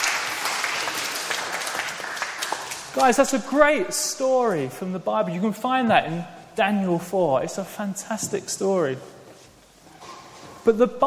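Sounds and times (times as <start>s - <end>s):
audience applause: 0.0s - 3.2s
speech: 3.0s - 9.2s, 10.6s - 11.0s.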